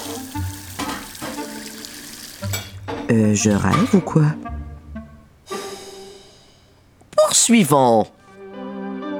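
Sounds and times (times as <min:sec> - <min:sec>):
water running into a sink: 0:00.0 - 0:02.7
dishes clattering while being washed: 0:00.7 - 0:01.6, 0:02.4 - 0:04.0
speech: 0:03.1 - 0:04.5, 0:07.5 - 0:08.2.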